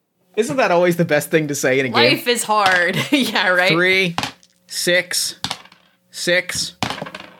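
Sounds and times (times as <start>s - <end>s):
speech: 0.4s - 5.4s, 6.2s - 6.8s
five dice rattling and clattering: 5.4s - 5.9s, 6.8s - 7.3s.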